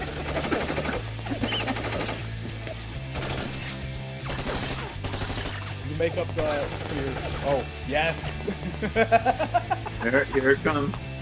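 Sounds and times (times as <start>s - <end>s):
rapid gunfire as people shoot: 0.0s - 2.5s, 3.1s - 8.6s
speech: 6.0s - 11.0s
laughter: 8.1s - 10.9s.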